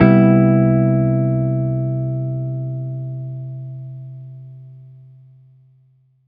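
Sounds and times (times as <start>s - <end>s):
jazz guitar CMaj7 chord: 0.0s - 4.9s.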